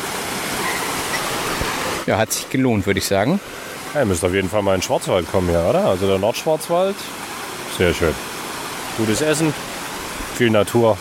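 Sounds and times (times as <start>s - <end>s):
waterfall rushing: 0.0s - 10.9s
speech: 2.1s - 7.2s, 7.8s - 8.3s, 9.0s - 9.7s, 10.4s - 10.9s.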